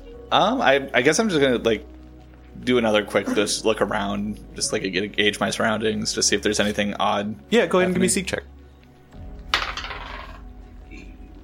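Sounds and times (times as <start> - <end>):
speech: 0.3 - 1.9, 2.6 - 8.5
dice rolling on a hard table: 9.5 - 10.5.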